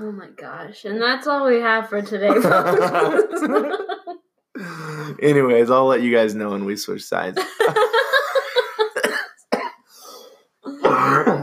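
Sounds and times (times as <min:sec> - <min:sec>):
speech: 0:00.0 - 0:04.0, 0:04.6 - 0:08.0
laughter: 0:02.3 - 0:04.2, 0:07.4 - 0:09.2
person coughing and clearing their throat: 0:08.8 - 0:09.9, 0:10.7 - 0:11.4.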